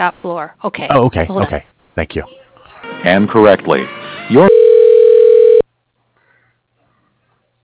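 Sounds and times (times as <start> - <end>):
speech: 0.0 - 2.4, 3.0 - 4.5
phone ringback tones as a call is transferred to voicemail: 2.7 - 5.6.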